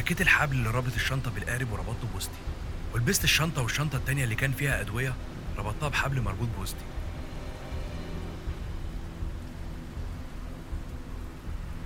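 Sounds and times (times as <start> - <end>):
heavy torrential rain pouring down at sea heard from a small boat: 0.0 - 11.8
speech: 0.1 - 7.0
deep low rumbling: 6.3 - 11.8.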